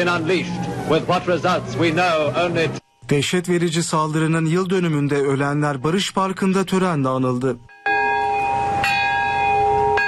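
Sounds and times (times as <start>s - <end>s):
speech: 0.0s - 7.8s
peace bell tolling at a memorial ceremony in Nagasaki's Peace Park: 7.7s - 10.0s.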